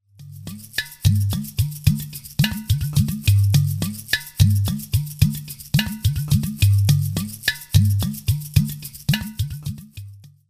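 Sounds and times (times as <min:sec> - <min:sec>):
udu drum: 0:00.2 - 0:10.4.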